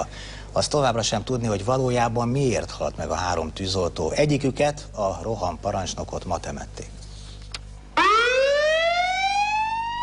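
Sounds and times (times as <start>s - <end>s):
speech: 0.0s - 7.0s
fire station siren sounding in memorial for firefighters: 8.0s - 10.0s.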